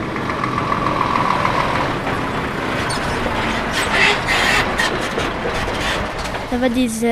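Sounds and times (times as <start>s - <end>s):
heavy truck engine idling at construction site: 0.0s - 6.6s
speech: 6.6s - 7.0s.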